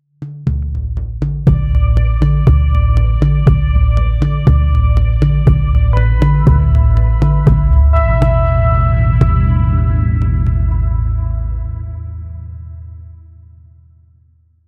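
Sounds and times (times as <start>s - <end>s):
rhythmic slightly mysterious oud playing: 1.5s - 12.0s.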